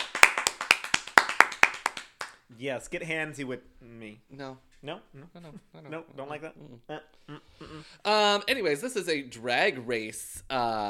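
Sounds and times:
small group clapping hands in applause: 0:00.0 - 0:02.4
speech: 0:02.5 - 0:10.8.

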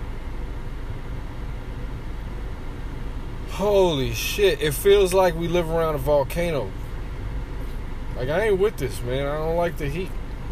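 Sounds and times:
car air conditioning blowing hard on a hot day: 0:00.0 - 0:10.5
speech: 0:03.6 - 0:06.8, 0:08.2 - 0:10.2.

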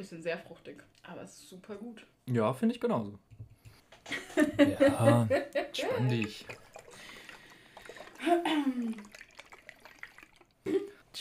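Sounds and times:
speech: 0:00.0 - 0:03.4, 0:04.0 - 0:06.6, 0:08.2 - 0:09.2, 0:10.6 - 0:11.1
laughter: 0:04.1 - 0:06.0
pale ale pouring into a glass: 0:05.9 - 0:10.8.

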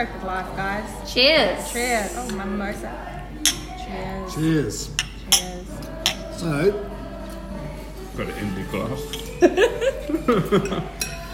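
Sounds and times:
speech: 0:00.0 - 0:06.9, 0:08.2 - 0:11.0
mimosa glasses clinking in a birthday toast: 0:03.4 - 0:03.8, 0:04.8 - 0:06.5, 0:10.4 - 0:11.3
light laughter: 0:09.3 - 0:11.1.

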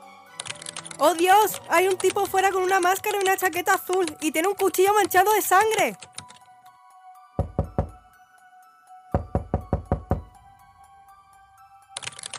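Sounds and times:
speech: 0:01.0 - 0:06.1
heavy pounding on a door: 0:07.4 - 0:08.0, 0:09.2 - 0:10.4.

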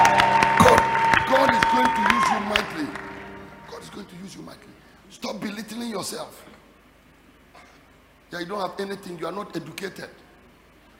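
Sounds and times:
crowd clapping in a reverberant room: 0:00.0 - 0:04.0
steady hum: 0:00.0 - 0:10.9
speech: 0:08.5 - 0:10.2.

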